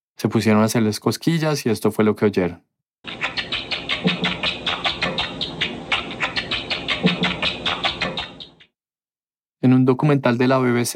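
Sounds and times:
speech: 0.2 - 2.8, 9.6 - 10.9
tickled rats' ultrasonic chirps lowered to audible frequencies with a bat-detector: 3.1 - 8.7.

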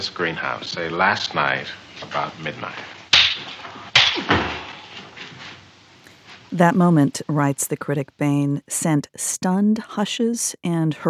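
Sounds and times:
speech: 0.0 - 3.6, 4.2 - 4.5, 6.5 - 11.0
steady hiss: 0.0 - 11.0
sharp loud face slaps in a film scene: 3.1 - 4.8.

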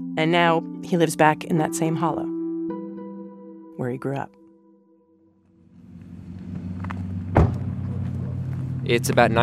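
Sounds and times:
speech: 0.2 - 2.4, 3.8 - 4.4, 8.8 - 9.4
pickup truck engine rumbling: 5.6 - 9.4
sharp thump: 7.3 - 8.0.

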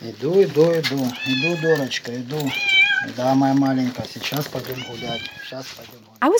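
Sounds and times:
speech: 0.0 - 6.3
cat meowing: 1.1 - 3.4, 4.5 - 5.6.

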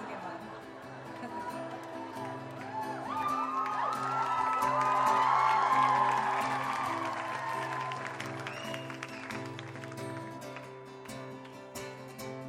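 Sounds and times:
laughter: 0.0 - 3.5
large concert crowd cheering, yelling and clapping: 0.7 - 12.0
scattered whoops: 1.3 - 9.6.

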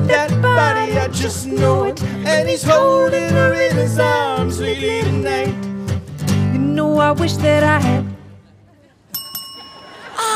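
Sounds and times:
speech: 0.2 - 5.7, 6.8 - 8.0
quiz contestant buzz-in bell at an outdoor game show in a city park: 9.1 - 10.2.

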